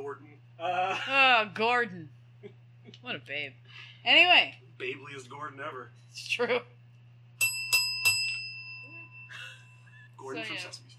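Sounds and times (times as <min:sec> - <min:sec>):
low hum: 0:00.0 - 0:10.9
speech: 0:00.2 - 0:02.2, 0:03.0 - 0:06.8, 0:10.2 - 0:10.9
bicycle-style bell ringing: 0:07.4 - 0:10.0.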